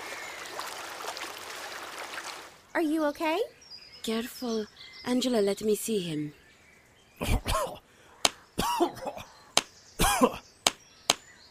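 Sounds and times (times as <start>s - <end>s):
speech: 2.8s - 6.4s, 7.2s - 7.8s
man coughing water out of his lungs: 7.2s - 7.8s, 8.6s - 9.3s, 10.0s - 10.4s.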